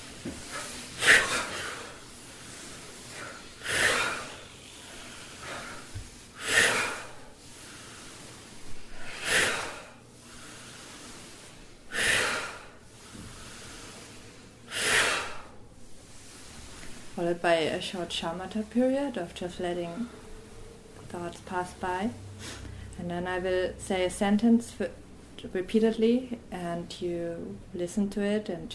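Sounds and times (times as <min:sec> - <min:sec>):
forceful cleansing exhalations from a guided breathing exercise: 0:00.0 - 0:17.2
soft breathing: 0:00.0 - 0:23.4
speech: 0:17.2 - 0:20.2, 0:21.1 - 0:28.7.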